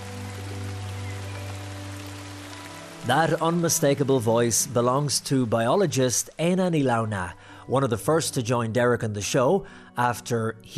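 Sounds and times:
rain falling inside a forest beneath an evergreen canopy of tall trees: 0.0s - 7.9s
speech: 3.0s - 10.7s.

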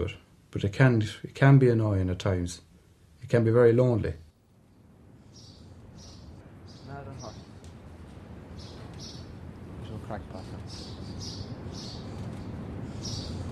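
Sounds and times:
speech: 0.0s - 2.7s, 3.3s - 4.2s
steady low rumble of noise: 0.0s - 13.4s
small birds chirping and twittering around nests: 3.3s - 13.4s.

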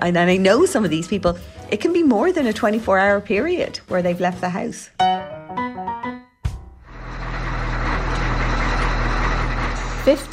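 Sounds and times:
speech: 0.0s - 5.2s, 10.0s - 10.3s
bus engine droning from inside the vehicle: 6.8s - 10.3s
road noise: 6.9s - 10.3s.

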